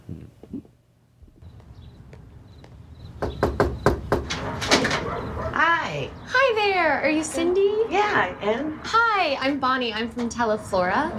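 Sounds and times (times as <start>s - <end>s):
knocking on a front door: 3.1s - 5.1s
speech: 6.0s - 11.1s.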